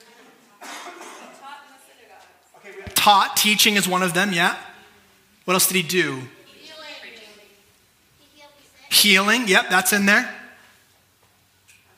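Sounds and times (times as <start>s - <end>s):
rough cough trailing into throaty rasping: 0.6s - 1.4s
speech: 3.0s - 4.7s, 5.5s - 6.4s, 9.0s - 10.4s.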